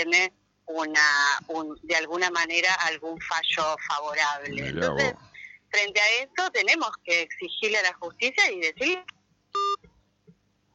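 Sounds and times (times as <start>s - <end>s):
speech: 0.0s - 9.9s
single short electronic beep on a phone line after a call drops: 9.6s - 9.8s.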